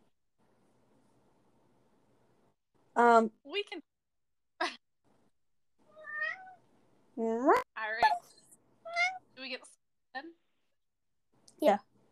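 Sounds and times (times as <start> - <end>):
speech: 3.0 - 3.9, 7.2 - 7.7, 11.6 - 11.9
cat meowing: 5.9 - 6.6, 8.9 - 9.2.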